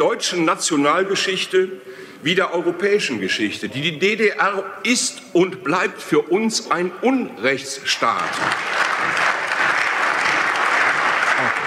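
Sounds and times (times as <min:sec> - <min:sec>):
speech: 0:00.0 - 0:09.3
large audience applauding in a parliament: 0:08.1 - 0:11.6.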